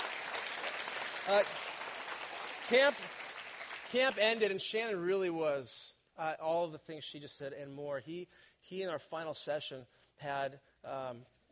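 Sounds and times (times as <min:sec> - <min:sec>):
audience applauding: 0:00.0 - 0:04.6
speech: 0:01.3 - 0:01.7, 0:02.7 - 0:03.2, 0:03.9 - 0:11.4.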